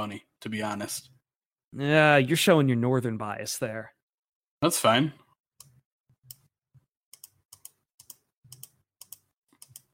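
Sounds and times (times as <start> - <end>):
speech: 0.0 - 4.0, 4.6 - 5.2
computer mouse or key clicking: 7.1 - 9.9.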